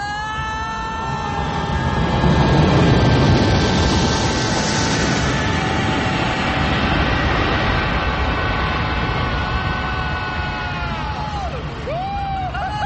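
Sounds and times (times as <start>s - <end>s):
jet airplane roaring overhead while landing: 0.0s - 12.8s.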